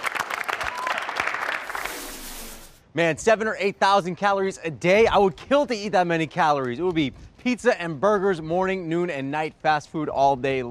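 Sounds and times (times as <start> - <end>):
round of applause after a warrior yoga pose demonstration: 0.0 - 1.9
speech: 2.9 - 10.6.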